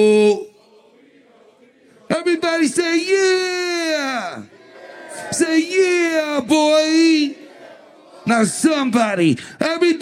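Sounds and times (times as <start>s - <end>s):
speech: 0.0s - 0.5s, 2.1s - 4.5s, 5.3s - 7.4s, 8.3s - 9.9s
live show audience chanting drawn-out vowel calls in unison: 0.4s - 2.8s, 4.5s - 5.7s, 7.2s - 8.6s
sustained swelling cry: 0.5s - 2.8s, 4.4s - 8.9s.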